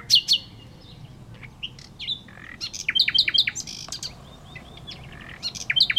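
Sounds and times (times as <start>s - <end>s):
Common nightingale singing: 0.0s - 5.9s.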